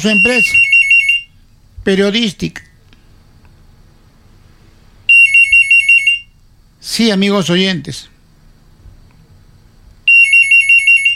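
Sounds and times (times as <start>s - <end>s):
speech: 0.0s - 0.7s, 1.8s - 2.7s, 6.8s - 8.1s
faint low hum: 0.0s - 11.1s
electronic telephone ringtone for an incoming call: 0.1s - 1.3s, 5.1s - 6.3s, 10.1s - 11.1s.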